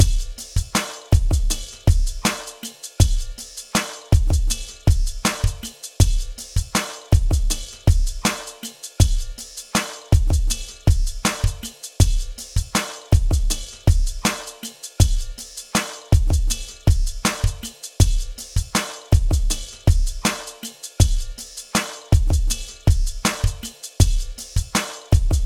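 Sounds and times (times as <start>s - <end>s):
drum beat: 0.0s - 25.4s.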